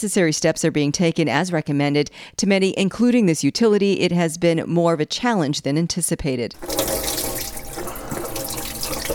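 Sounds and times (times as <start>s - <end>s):
speech: 0.0s - 7.1s
water running from a kitchen tap into a sink: 6.6s - 9.1s.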